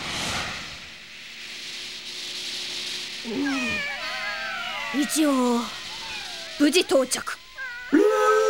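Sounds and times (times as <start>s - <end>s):
soft steady hiss: 0.0s - 8.4s
speech: 3.2s - 3.6s, 4.9s - 5.8s, 6.6s - 7.4s
cat meowing: 3.3s - 8.0s.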